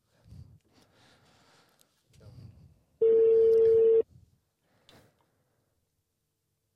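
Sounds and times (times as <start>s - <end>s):
telephone ringing tone on an outgoing call: 3.0s - 4.0s.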